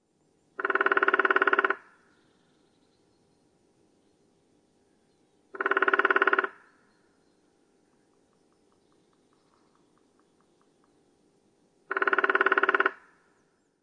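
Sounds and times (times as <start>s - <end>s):
lesser spotted woodpecker drumming: 0.6s - 2.0s, 5.5s - 7.1s, 7.8s - 11.2s, 11.8s - 13.2s.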